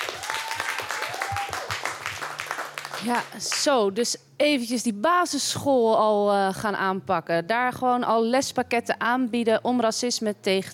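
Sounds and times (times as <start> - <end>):
applause for a student team's project pitch: 0.0 - 3.7
speech: 3.0 - 10.7.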